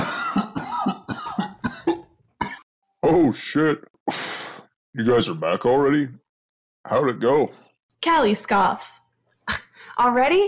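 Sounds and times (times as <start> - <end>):
person coughing in a smoke cloud: 0.0 - 2.6
speech: 3.1 - 4.4, 5.0 - 6.2, 6.8 - 10.4.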